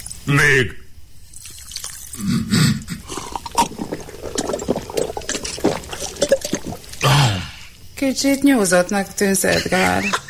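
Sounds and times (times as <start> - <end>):
speech: 0.2 - 0.8, 2.2 - 2.6, 8.0 - 10.2
sugar water being poured into a glass: 1.2 - 2.2, 3.1 - 7.2.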